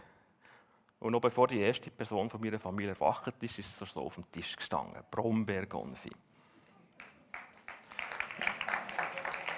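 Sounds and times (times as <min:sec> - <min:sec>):
speech: 0:01.0 - 0:06.3
audience applause with dense clapping: 0:07.0 - 0:09.5.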